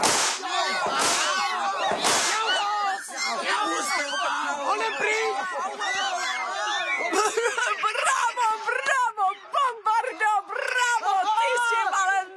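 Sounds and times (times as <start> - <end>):
whip cracking: 0.0 - 2.5
laughter: 0.0 - 12.2
people shouting in a scuffle: 0.0 - 12.2
people wailing: 0.0 - 12.2.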